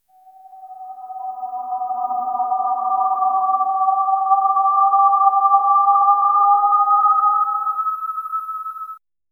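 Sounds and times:
mystical golden swirl: 0.1 - 9.0.

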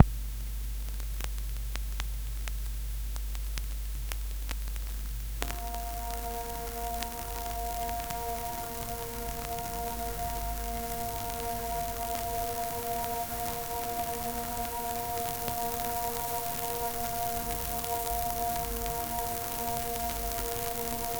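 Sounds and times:
analog tape hiss: 0.0 - 21.1.

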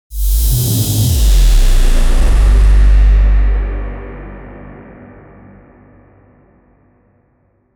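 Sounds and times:
cinematic downer effect: 0.1 - 6.3.

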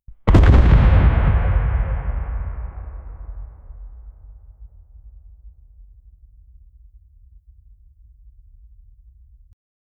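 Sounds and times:
reverberant outdoor gun explosion: 0.3 - 7.6.

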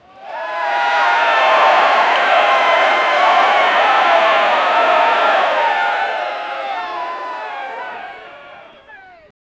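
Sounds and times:
very large crowd in an arena counting down: 0.0 - 9.3.

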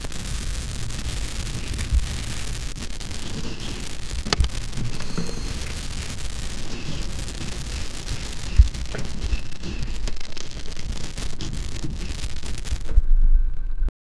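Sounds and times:
heavenly ambience: 0.8 - 13.8.

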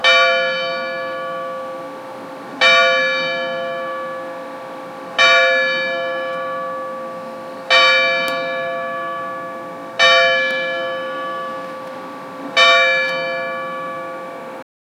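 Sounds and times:
Orthodox church bells ringing: 0.0 - 14.6.

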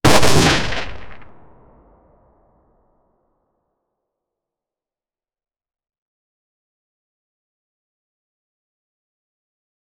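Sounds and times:
sudden gunshot: 0.0 - 2.1.

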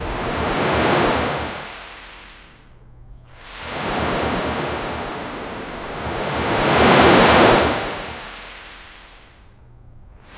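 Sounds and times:
wave splashing lightly: 0.0 - 10.3.

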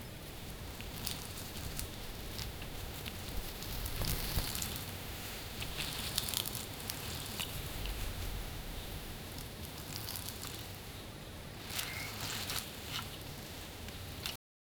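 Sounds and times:
soft crunch: 0.0 - 14.4.

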